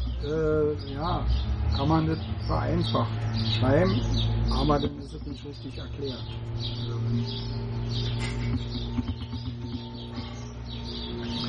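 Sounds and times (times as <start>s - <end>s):
birds chirping: 0.0s - 11.4s
speech: 0.2s - 9.5s
constant low hum: 3.1s - 11.4s.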